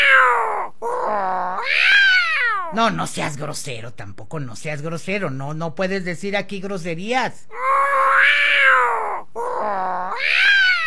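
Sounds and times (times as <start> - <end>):
cat meowing in long whining yowls: 0.0 - 2.7, 7.6 - 10.8
speech: 2.7 - 10.5.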